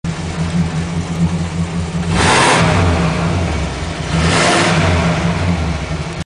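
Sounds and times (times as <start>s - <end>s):
Oldsmobile V8 engine: 0.0s - 6.2s.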